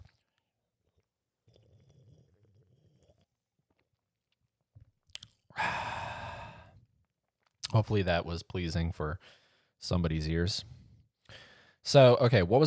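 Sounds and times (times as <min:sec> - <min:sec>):
person sipping soda against the microphone: 0:00.0 - 0:04.0, 0:04.8 - 0:07.6
mouth clicks and gulps: 0:00.0 - 0:05.6
loud breathy exhale of satisfaction: 0:05.6 - 0:06.8
speech: 0:07.8 - 0:12.6.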